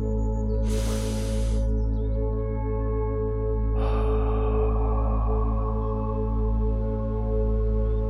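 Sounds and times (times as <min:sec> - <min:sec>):
steady low tonal drone: 0:00.0 - 0:08.0
slow deep breaths taken as a calming exercise: 0:00.6 - 0:01.7, 0:03.7 - 0:07.0.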